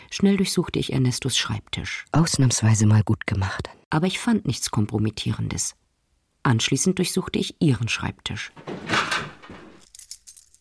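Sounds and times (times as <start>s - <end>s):
speech: 0.1s - 5.8s, 6.4s - 9.2s
bunch of labeled keys jangling: 8.6s - 10.5s.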